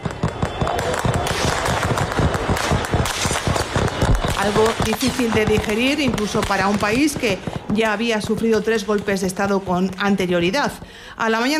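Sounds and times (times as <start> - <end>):
rapid gunfire bursts during street clashes: 0.0 - 7.7
speech: 4.4 - 11.5.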